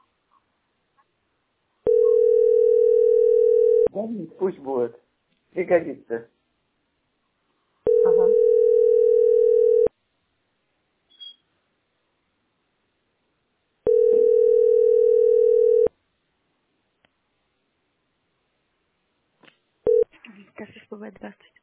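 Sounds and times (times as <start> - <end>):
person answering a telephone call: 1.9 - 3.9, 7.9 - 9.9, 13.9 - 15.9
telephone line beeps while someone tries to get through on a call: 1.9 - 3.9, 7.9 - 9.9, 13.9 - 15.9, 19.9 - 20.1
speech: 4.0 - 6.4.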